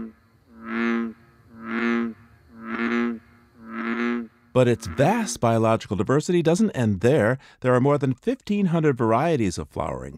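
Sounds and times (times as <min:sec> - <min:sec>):
bullfrog croaking: 0:00.0 - 0:05.5
speech: 0:04.6 - 0:10.1.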